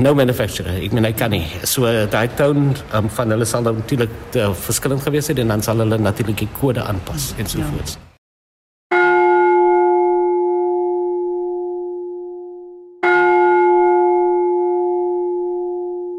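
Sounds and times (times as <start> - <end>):
speech: 0.0 - 8.1
ship's bell struck: 8.9 - 16.1.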